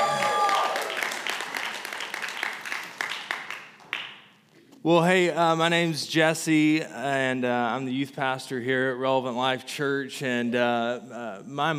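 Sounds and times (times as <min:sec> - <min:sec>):
audience applause at a church service: 0:00.0 - 0:04.1
speech: 0:04.8 - 0:11.7.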